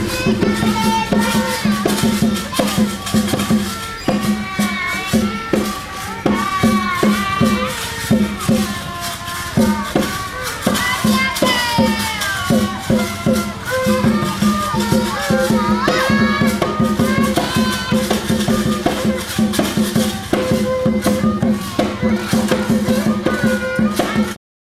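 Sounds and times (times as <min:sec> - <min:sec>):
wavering higher tones: 0:00.0 - 0:23.9
crowded voices and chatter at Angkor Wat: 0:00.0 - 0:24.4.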